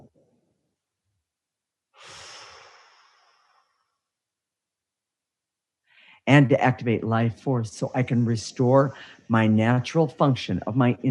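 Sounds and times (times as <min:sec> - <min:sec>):
deep breath drawn in during a guided relaxation exercise: 0:01.9 - 0:04.0, 0:05.8 - 0:06.2, 0:08.9 - 0:09.3
speech: 0:06.3 - 0:11.0.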